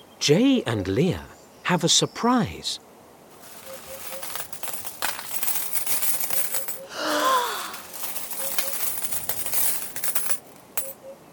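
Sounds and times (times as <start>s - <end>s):
speech: 0.2s - 2.8s
gold coins clinking as a bucket is emptied: 3.3s - 11.0s.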